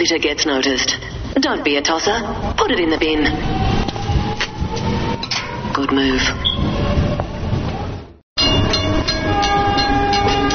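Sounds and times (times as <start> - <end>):
speech: 0.0 - 3.7, 5.8 - 6.7
train rushing past a station platform: 2.1 - 10.5
clattering train wheels: 8.4 - 10.5
sustained train horn tone: 8.8 - 10.5.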